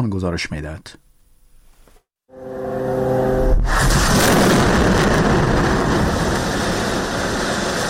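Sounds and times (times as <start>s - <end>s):
speech: 0.0s - 1.0s
fighter jet roar: 2.4s - 7.8s
heavy continuous roaring rumble: 3.3s - 7.8s
explosions: 3.4s - 7.8s.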